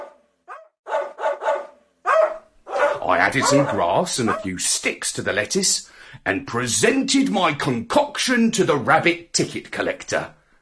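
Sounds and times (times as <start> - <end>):
farm dog barking: 0.0 - 4.6
speech: 3.0 - 10.4.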